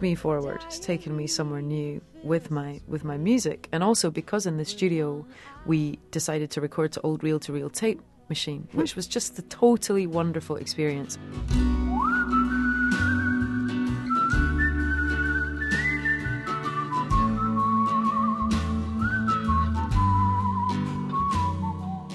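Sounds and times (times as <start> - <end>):
speech: 0.0 - 11.8
full band backing with steady bass and drums: 11.4 - 22.1
male singer-songwriter whistling a melody: 11.6 - 22.1.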